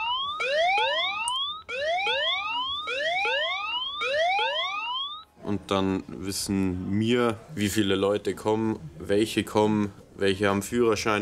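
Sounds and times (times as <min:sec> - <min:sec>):
phone alarm with electronic siren-like whooping tone: 0:00.0 - 0:05.3
speech: 0:05.5 - 0:11.2.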